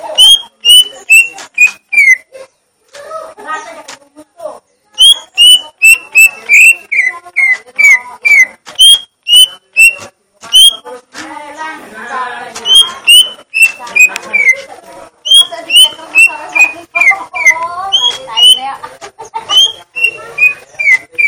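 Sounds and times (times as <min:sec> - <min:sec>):
leafbird soft chattering: 0:00.0 - 0:02.7, 0:04.6 - 0:10.9, 0:12.6 - 0:21.2
leafbird singing gledek song type: 0:00.1 - 0:02.2, 0:05.0 - 0:10.8, 0:12.6 - 0:14.6, 0:15.2 - 0:18.7, 0:19.5 - 0:21.2.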